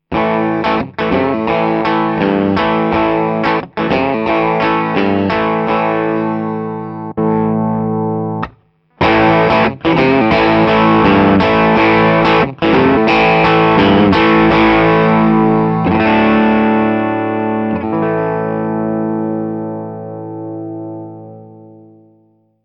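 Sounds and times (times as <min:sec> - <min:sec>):
guitar through amplifier: 0:00.0 - 0:22.6.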